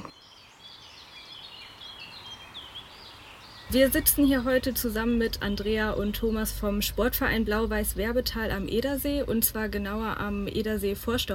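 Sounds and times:
bird chirps: 0.0s - 11.3s
outdoor background hiss: 0.0s - 11.3s
speech: 3.7s - 11.3s.

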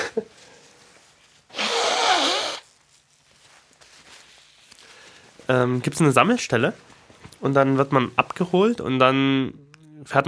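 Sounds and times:
faint sniff: 0.2s - 2.7s
loud harsh nose blow: 1.5s - 2.7s
speech: 5.5s - 10.2s.

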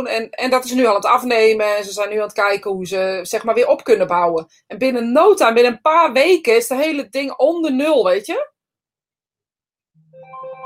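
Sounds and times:
speech: 0.0s - 8.5s
mobile phone ringtone of electronic tones stepping upward: 10.2s - 10.6s.

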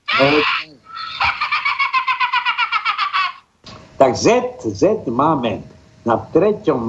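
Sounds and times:
short hen squawk: 0.0s - 1.4s
laughter: 0.1s - 3.4s
speech: 0.2s - 0.7s, 4.0s - 6.8s.

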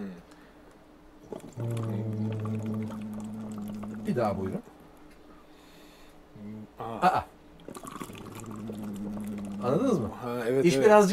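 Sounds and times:
steady hummed voice tone: 1.2s - 4.6s, 6.3s - 10.2s
watery bubbling gurgles: 1.2s - 4.6s, 7.6s - 10.2s
speech: 4.1s - 4.8s, 6.8s - 7.3s, 9.6s - 11.1s.

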